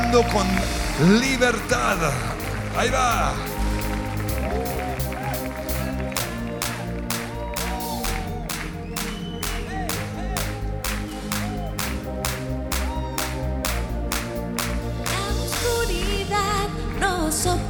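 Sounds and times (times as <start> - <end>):
audience clapping on the beat: 0.0 - 17.6
speech: 0.1 - 3.6
full band playing music: 0.6 - 8.4.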